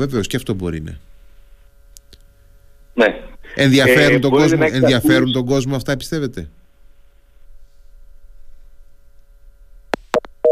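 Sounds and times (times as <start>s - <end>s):
speech: 0.0s - 1.1s, 3.0s - 6.6s
loud telephone busy tone beep after a dropped call: 3.8s - 5.4s.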